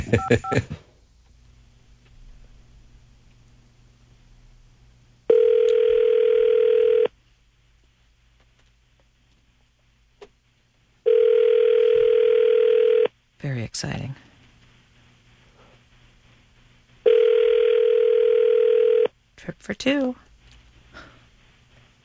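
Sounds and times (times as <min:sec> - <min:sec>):
laughter: 0:00.0 - 0:00.8
speech: 0:00.1 - 0:00.8, 0:19.8 - 0:20.2
telephone tones on an outgoing call: 0:05.3 - 0:07.1, 0:11.1 - 0:13.1, 0:17.1 - 0:19.1.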